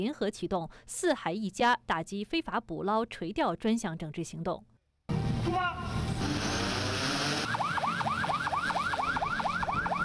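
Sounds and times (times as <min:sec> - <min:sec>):
speech: 0:00.0 - 0:04.7
broad outdoor noise: 0:05.1 - 0:10.0
law-enforcement patrol boat siren yelping: 0:07.2 - 0:10.0.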